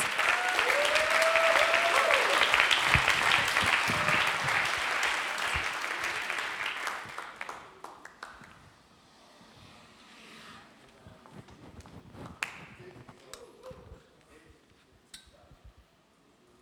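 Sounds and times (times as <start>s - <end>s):
audience applause: 0.0s - 8.6s.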